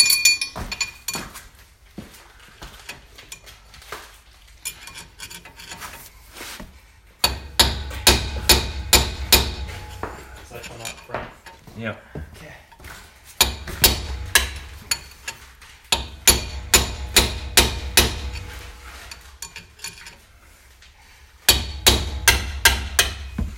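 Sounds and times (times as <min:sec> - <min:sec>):
hammer knocking out bearing races: 0:07.2 - 0:11.6, 0:13.4 - 0:15.3, 0:15.9 - 0:19.6, 0:21.5 - 0:23.5
speech: 0:11.8 - 0:12.1.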